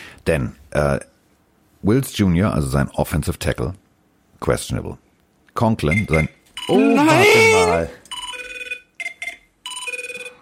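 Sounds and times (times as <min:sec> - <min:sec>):
speech: 0:00.2 - 0:01.1, 0:01.8 - 0:03.8, 0:04.4 - 0:05.0, 0:05.6 - 0:08.0
telephone ringing with electronic warbling trill: 0:06.6 - 0:10.4.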